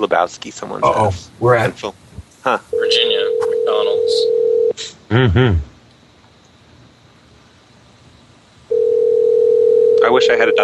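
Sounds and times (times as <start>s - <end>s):
speech: 0.0s - 3.1s, 4.0s - 5.7s, 10.2s - 10.6s
telephone dial tone while calling a fast food restaurant: 2.8s - 4.7s, 8.7s - 10.1s.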